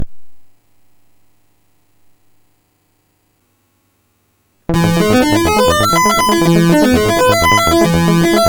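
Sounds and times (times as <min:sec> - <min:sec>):
detuned synth lead on MOS6581R4 chip: 0:04.7 - 0:08.4.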